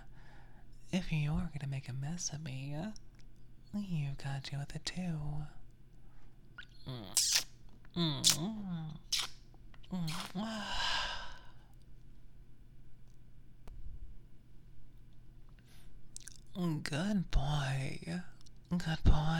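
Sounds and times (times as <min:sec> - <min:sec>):
speech: 0:01.0 - 0:03.0, 0:03.7 - 0:05.6, 0:06.9 - 0:09.3, 0:09.9 - 0:11.0, 0:16.6 - 0:19.3
heavy breathing with moan-like catches: 0:10.4 - 0:11.7.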